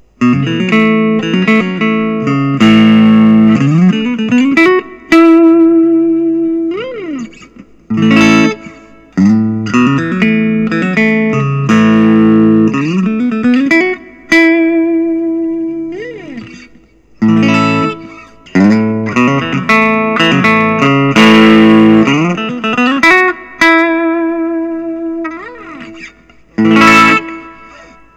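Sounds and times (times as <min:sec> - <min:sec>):
Collings I-35 LC Deluxe electric guitar: 0:00.0 - 0:28.1.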